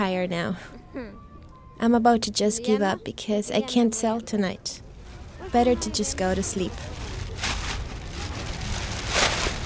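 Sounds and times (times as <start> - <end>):
speech: 0.2 - 4.8, 5.5 - 7.1
light rain falling outdoors: 4.8 - 9.6.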